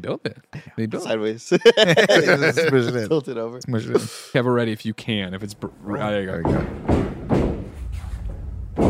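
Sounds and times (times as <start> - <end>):
speech: 0.0 - 7.0
laughter: 1.4 - 3.2
wrestler's heavy body slamming onto a miked wrestling ring: 6.5 - 8.8.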